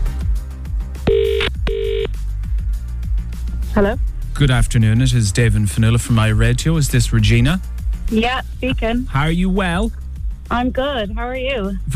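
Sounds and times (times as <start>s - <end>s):
steady rhythmic music bed: 0.0s - 11.9s
telephone ringing for a radio phone-in call: 1.1s - 2.1s
speech: 3.8s - 11.9s.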